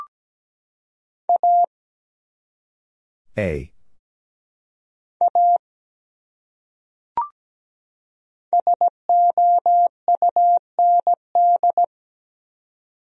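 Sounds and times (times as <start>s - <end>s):
electronic tone keying Morse code: 1.4s - 1.7s, 8.6s - 11.9s
speech: 3.4s - 3.7s.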